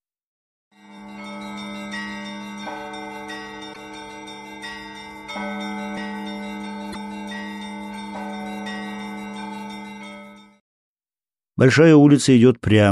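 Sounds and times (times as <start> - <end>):
church bells ringing: 0.8 - 10.6
speech: 11.6 - 12.9.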